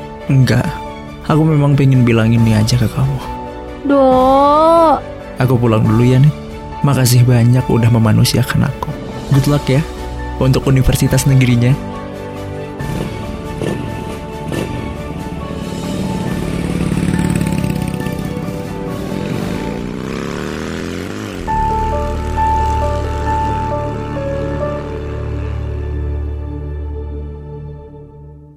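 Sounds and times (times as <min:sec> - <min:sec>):
speech: 0:00.3 - 0:11.9
motorcycle engine revving and driving away from a house: 0:12.5 - 0:26.6.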